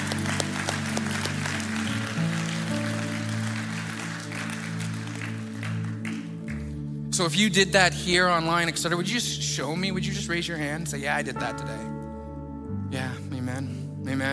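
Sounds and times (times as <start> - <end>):
church audience applause: 0.0 - 6.7
low musical drone or organ chord: 0.0 - 14.3
speech: 7.2 - 12.0.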